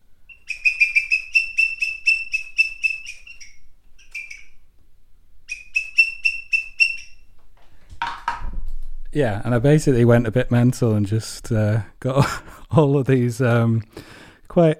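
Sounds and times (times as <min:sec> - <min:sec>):
bird-call whistle imitating a green woodpecker's laughing call: 0:00.3 - 0:04.7, 0:05.5 - 0:07.3
speech: 0:09.2 - 0:14.7.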